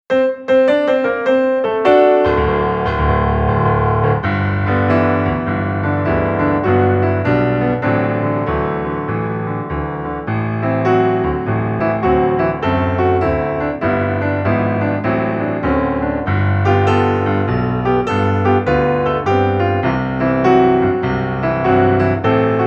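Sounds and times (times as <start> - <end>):
solo piano: 0.1 - 22.6.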